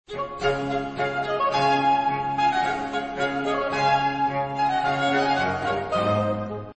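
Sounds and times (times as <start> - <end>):
American baroque music in D: 0.1 - 6.7.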